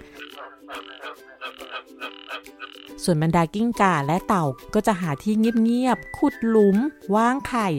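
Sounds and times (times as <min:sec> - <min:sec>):
frogs croaking in a dense rhythmic chorus: 0:00.0 - 0:03.0
speech: 0:00.6 - 0:07.7.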